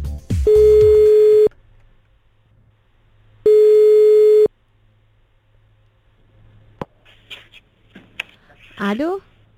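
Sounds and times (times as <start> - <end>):
telephone ringing tone as a call is placed: 0.5 - 1.5, 3.5 - 4.5.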